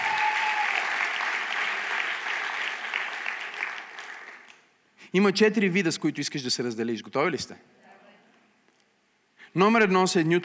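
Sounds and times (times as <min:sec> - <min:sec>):
audience applause at a church service: 0:00.0 - 0:04.6
speech: 0:05.1 - 0:07.8, 0:09.6 - 0:10.4.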